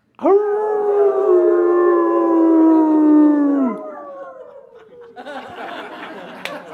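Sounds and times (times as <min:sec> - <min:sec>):
person imitating a wolf howl with their voice: 0:00.2 - 0:05.3
laughter: 0:04.4 - 0:06.7.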